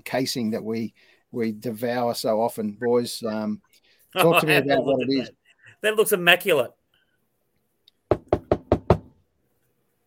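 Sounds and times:
speech: 0.1 - 6.8
knocking on a door: 8.1 - 9.2.

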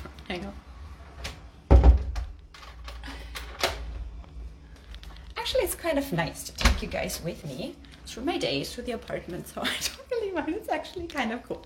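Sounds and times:
speech: 0.3 - 0.7, 5.5 - 11.6
door shutting with a heavy low thud: 1.7 - 2.3.

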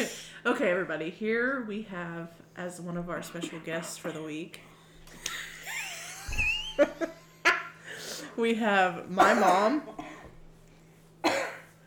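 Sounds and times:
speech: 0.0 - 5.4, 8.4 - 10.0
faint steady hum: 0.0 - 11.8
woman coughing: 3.3 - 4.4, 9.1 - 10.3, 11.2 - 11.7.

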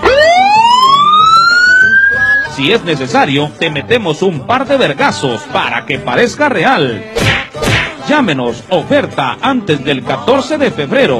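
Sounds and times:
police siren wailing: 0.0 - 2.6
speech: 2.6 - 7.2, 8.0 - 11.1.

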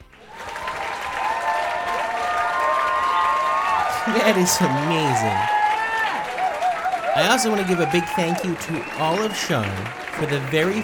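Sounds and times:
canned audience applause: 0.0 - 10.8
faint cheering whistles: 0.2 - 10.8
speech: 4.1 - 5.6, 7.2 - 10.8.

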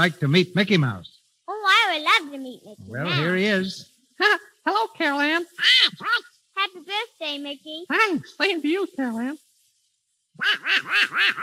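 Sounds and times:
speech: 0.0 - 1.1, 2.3 - 9.4, 10.4 - 11.4
raspy cartoonish duck voice quacking: 1.5 - 3.5, 5.5 - 7.2, 10.4 - 11.4.

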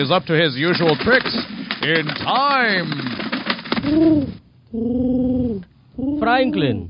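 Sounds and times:
speech: 0.0 - 3.2, 3.8 - 6.8
quick fluttery rustles: 0.0 - 5.3
carrier pigeon cooing: 3.2 - 6.8.

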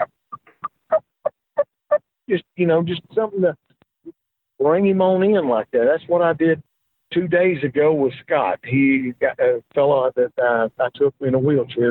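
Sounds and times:
soft turkey cluck and purr call: 0.0 - 2.0
speech: 2.3 - 3.6, 4.6 - 11.9.

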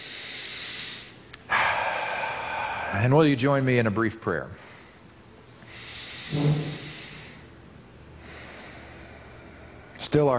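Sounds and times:
group taking a deep breath together during a church service: 0.0 - 3.0, 4.6 - 7.6, 8.2 - 10.0
speech: 2.9 - 4.6, 6.3 - 6.7, 10.1 - 10.3.

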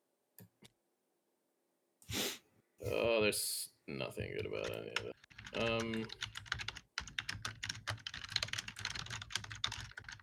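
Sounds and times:
speech: 3.2 - 6.3
rapid typing on computer keyboard: 4.5 - 10.2.

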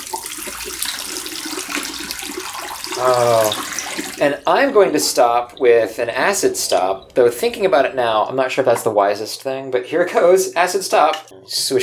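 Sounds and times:
liquid gently poured out of a tank: 0.0 - 7.4
speech: 3.0 - 3.6, 4.2 - 11.8.

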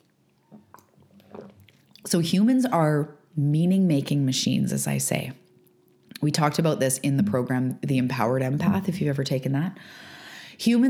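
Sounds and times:
person sipping a drink: 0.4 - 2.0
gentle swallow: 0.4 - 2.1
speech: 2.0 - 5.4, 6.2 - 10.8.

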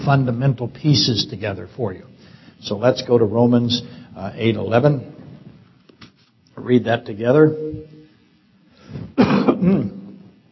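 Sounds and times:
speech: 0.0 - 5.2, 6.6 - 8.0
person coughing: 9.0 - 10.2
person clearing throat: 9.0 - 10.3.

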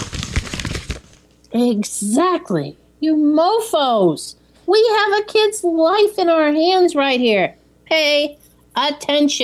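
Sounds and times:
paper being crumpled up: 0.0 - 1.2
speech: 1.5 - 9.4.

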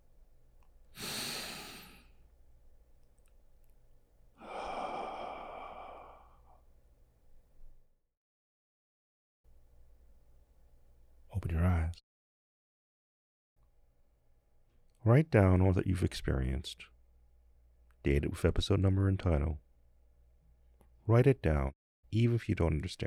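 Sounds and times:
breathing in and exhaling: 0.9 - 2.3, 4.4 - 6.6
speech: 15.1 - 16.9, 18.0 - 19.6, 21.1 - 23.0.

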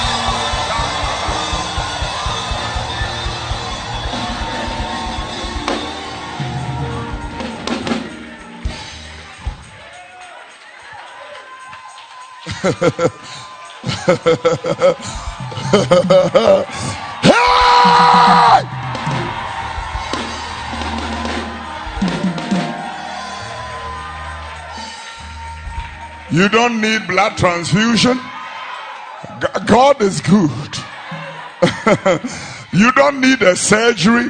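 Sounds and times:
rhythmic clapping: 0.0 - 17.2, 17.8 - 27.4
crowd at a praise and worship gathering screaming and cheering: 0.0 - 34.2
laughter: 12.4 - 20.6, 30.7 - 33.2
speech: 12.6 - 13.3, 14.1 - 17.0, 26.3 - 28.3, 29.4 - 30.9, 31.9 - 34.2.

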